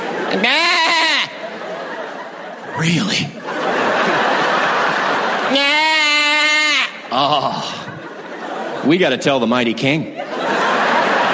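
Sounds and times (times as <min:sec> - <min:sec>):
laughter: 0:00.0 - 0:11.3
speech: 0:00.3 - 0:00.7, 0:02.8 - 0:03.4, 0:07.2 - 0:07.7, 0:08.8 - 0:10.6
person's voice imitating a bleating sheep: 0:00.4 - 0:01.3, 0:05.5 - 0:07.6.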